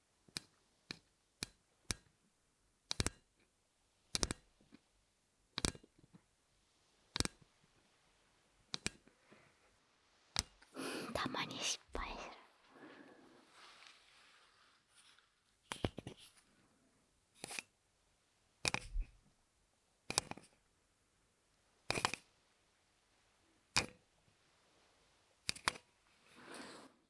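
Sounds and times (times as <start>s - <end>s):
Surface Pen stylus clicking: 0.3s - 2.2s, 2.9s - 3.4s, 4.1s - 4.8s, 5.5s - 6.2s, 7.1s - 7.6s, 8.6s - 9.2s, 10.3s - 12.2s, 15.7s - 16.3s, 17.4s - 17.7s, 18.6s - 19.1s, 20.1s - 20.6s, 21.9s - 22.3s, 23.7s - 24.0s, 25.4s - 25.9s.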